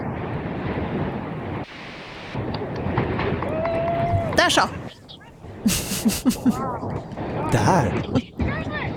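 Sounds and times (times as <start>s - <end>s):
strong wind roaring across exposed archipelago rocks: 0.0s - 8.9s
speech: 4.4s - 4.8s, 5.6s - 8.3s
laughter: 5.6s - 6.9s.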